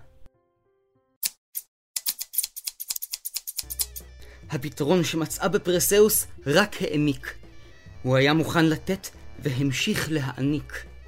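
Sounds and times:
scissors snipping through hair: 1.2s - 4.1s
speech: 4.5s - 7.4s, 8.0s - 10.9s.

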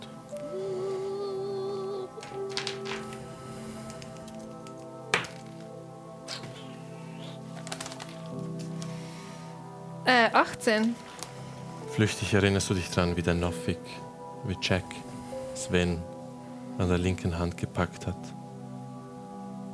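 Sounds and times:
quiet steady music: 0.0s - 19.7s
dice clattering and tumbling across a hard surface: 2.2s - 3.3s, 3.9s - 5.7s
speech: 10.1s - 11.0s, 12.0s - 16.1s, 16.8s - 18.4s.

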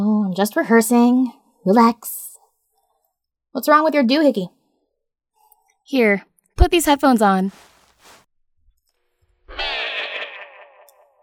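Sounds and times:
speech: 0.3s - 2.2s, 3.6s - 4.6s, 5.9s - 7.7s
wavering goat bleat with heavy echo effect: 9.5s - 11.2s.

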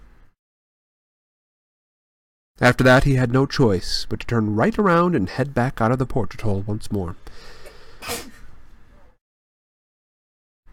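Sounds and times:
speech: 2.6s - 8.3s
voice acting out a sneeze: 7.6s - 8.5s.

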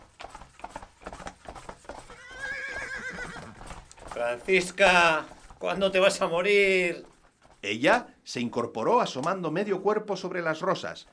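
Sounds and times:
horse hooves clip-clopping: 0.0s - 11.1s
ridden horse whinnying: 2.0s - 4.7s
speech: 4.2s - 11.1s.

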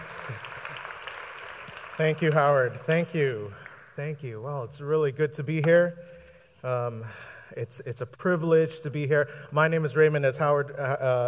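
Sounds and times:
church audience clapping: 0.0s - 4.0s
speech: 2.0s - 11.2s.

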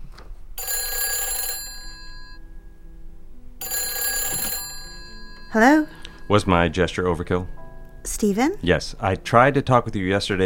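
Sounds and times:
telephone ringing: 0.6s - 3.0s, 3.6s - 8.6s
speech: 5.5s - 10.4s.

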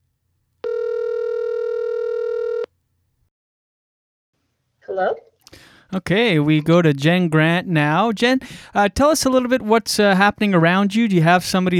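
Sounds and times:
telephone line electronic tone while a call is being dialed: 0.6s - 2.7s
speech: 5.0s - 5.3s, 5.9s - 11.7s.

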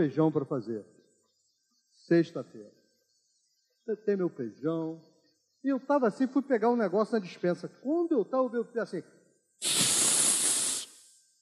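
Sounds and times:
speech: 0.0s - 1.0s, 2.1s - 2.8s, 3.9s - 9.8s
voice imitating pressure cooker steam hiss: 9.6s - 11.2s.

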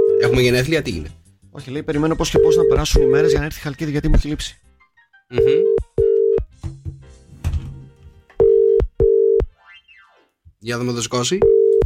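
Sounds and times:
phone ringback tone of an unanswered call: 0.0s - 0.5s, 2.3s - 3.4s, 5.3s - 6.5s, 8.4s - 9.5s, 11.4s - 11.8s
speech: 0.3s - 4.6s, 5.3s - 5.9s, 10.6s - 11.6s
thuds: 7.3s - 8.1s.

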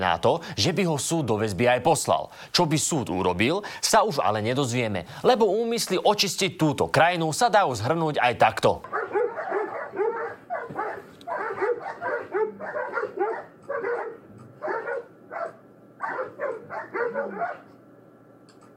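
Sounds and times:
speech: 0.0s - 9.0s
dog barking and yipping: 8.9s - 17.8s.

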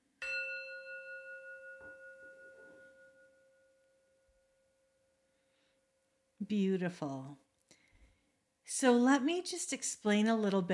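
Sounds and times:
bell struck to open a meditation circle: 0.2s - 3.6s
speech: 6.4s - 7.4s, 8.7s - 10.7s.

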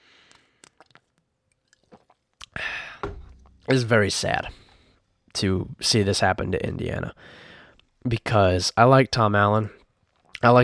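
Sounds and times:
person sipping a drink: 0.1s - 3.8s
slurping: 0.3s - 2.6s
speech: 3.7s - 4.6s, 5.4s - 7.4s, 8.0s - 9.8s, 10.4s - 10.6s.

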